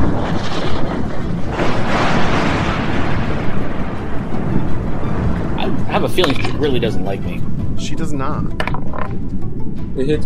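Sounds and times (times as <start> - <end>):
crackling rumble of thunder from a lightning strike: 0.0 - 7.9
speech: 6.2 - 10.2.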